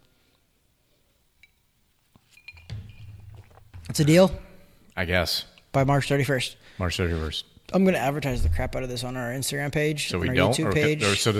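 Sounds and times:
glasses clinking in a toast: 1.4 - 3.8
speech: 3.9 - 11.3.

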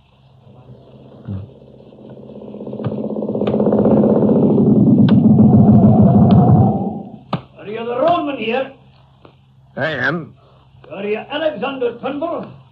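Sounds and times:
motorcycle engine rumbling: 0.4 - 7.3
speech: 1.3 - 1.6, 9.8 - 10.3, 11.1 - 12.6.

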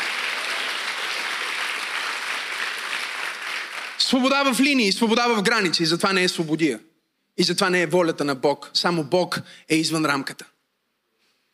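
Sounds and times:
crowd applauding loudly: 0.0 - 4.5
speech: 4.0 - 10.5.

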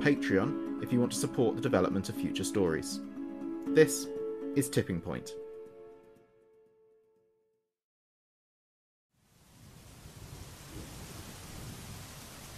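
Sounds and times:
speech: 0.0 - 5.4
brief musical tone: 0.0 - 7.0
heavy rain and storm at sea off the coast of Whitby: 9.3 - 12.5.

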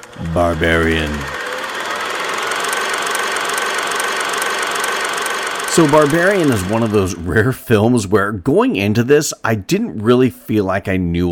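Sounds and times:
old film projector whirring with fast regular clatter: 0.0 - 8.0
speech: 0.2 - 1.4, 5.8 - 11.2.

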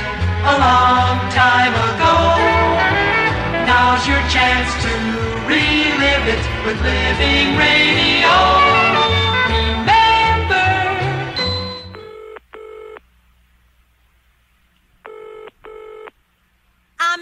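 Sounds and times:
music: 0.0 - 12.0
speech: 0.4 - 1.9
telephone dialing tones: 11.9 - 13.0, 15.0 - 16.2.

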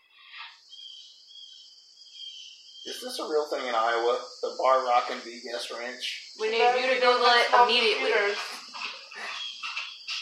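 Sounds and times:
cricket chirping: 0.0 - 10.2
speech: 2.8 - 8.6.

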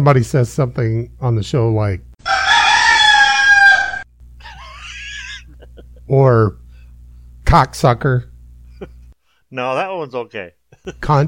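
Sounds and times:
speech: 0.0 - 2.1, 6.1 - 6.6, 7.5 - 11.2
rooster crowing: 2.2 - 4.1
laughter: 4.4 - 6.1, 10.7 - 11.2.

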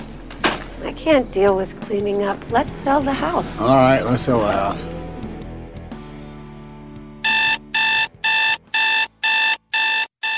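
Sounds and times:
speech: 1.0 - 5.0
alarm clock ringing with piercing electronic beeps: 7.2 - 10.3.

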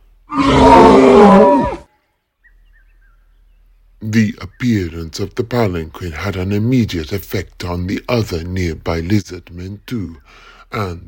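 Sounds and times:
bellowing high-pitched creature roar: 0.3 - 1.9
speech: 4.1 - 11.0.

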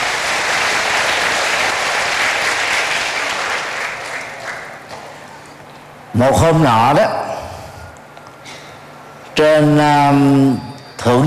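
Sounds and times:
enthusiastic audience applause: 0.0 - 5.2
speech: 6.2 - 7.2, 9.4 - 11.2.

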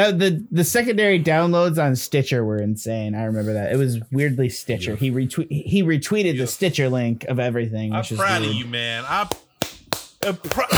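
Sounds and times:
speech: 0.0 - 9.4, 10.2 - 10.7
one person clapping hands: 9.3 - 10.7.

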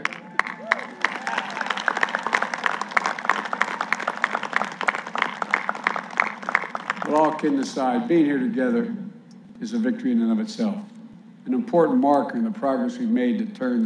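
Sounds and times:
sizable audience clapping: 0.0 - 7.9
speech: 7.4 - 9.0, 9.6 - 10.9, 11.5 - 13.8.

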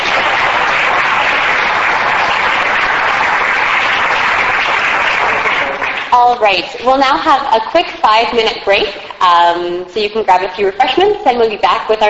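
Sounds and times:
audience applause thanking a speaker after a talk: 0.0 - 6.6
speech: 6.3 - 12.0.

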